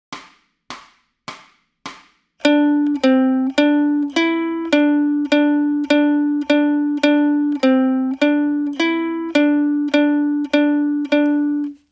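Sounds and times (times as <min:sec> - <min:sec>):
ukulele warm up in D: 0:02.4 - 0:11.8.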